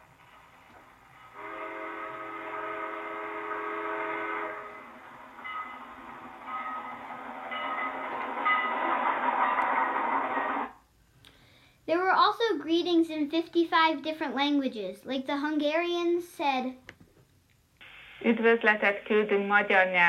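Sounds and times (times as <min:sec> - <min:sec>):
train rumbling and clattering as it rolls past: 0:00.0 - 0:10.8
train whistle: 0:01.3 - 0:05.8
speech: 0:12.1 - 0:16.8, 0:18.3 - 0:20.0.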